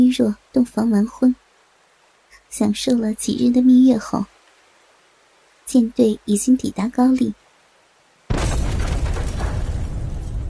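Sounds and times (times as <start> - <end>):
speech: 0.0 - 1.4, 2.5 - 4.3, 5.7 - 7.4
cannon shell exploding: 8.3 - 10.4.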